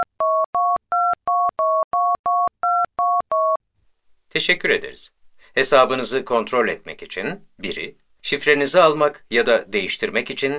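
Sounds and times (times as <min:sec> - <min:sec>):
telephone keypad two-tone beeps entering an account number: 0:00.0 - 0:03.6
speech: 0:04.4 - 0:10.5.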